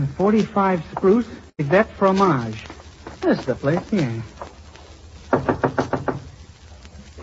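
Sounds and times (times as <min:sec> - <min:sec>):
speech: 0:00.2 - 0:04.3
knocking on a door: 0:05.3 - 0:06.2.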